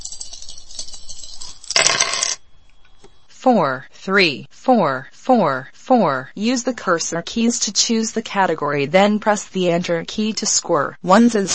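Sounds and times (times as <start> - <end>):
dice rolled in a video dice game: 0.0 - 2.4
speech: 3.4 - 11.5.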